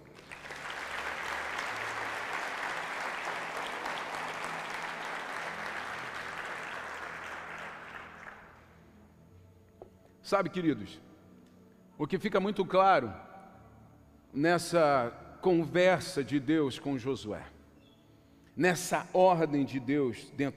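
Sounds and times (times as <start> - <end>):
audience applauding: 0.0 - 8.7
speech: 10.3 - 11.1, 12.0 - 13.2, 14.3 - 17.6, 18.6 - 20.5.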